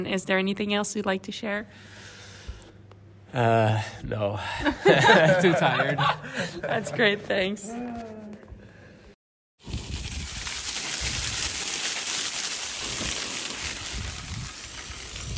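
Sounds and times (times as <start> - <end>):
speech: 0.0 - 2.1, 3.3 - 8.2
laughter: 4.4 - 7.8
high-pressure hose at a gas station washing bikes: 9.7 - 15.3.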